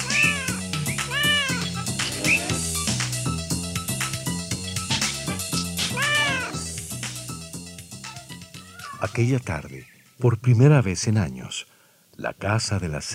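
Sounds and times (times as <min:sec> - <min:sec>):
cat meowing: 0:00.0 - 0:02.6, 0:05.8 - 0:06.6, 0:08.6 - 0:09.2
upbeat music with steady bass line and rhythmic beat: 0:00.0 - 0:09.3
speech: 0:09.2 - 0:13.1.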